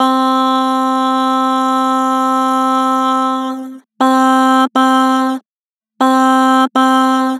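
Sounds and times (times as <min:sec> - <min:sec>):
person singing bah: 0:00.0 - 0:05.4, 0:06.0 - 0:07.3.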